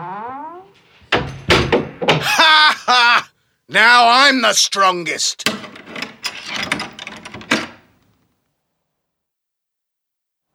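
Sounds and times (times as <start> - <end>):
springy wobbling boing-like tone: 0.0 - 1.6
loud booming impacts like a heavy door slamming shut: 0.0 - 2.3
laughter: 2.2 - 3.4
speech: 3.7 - 5.7.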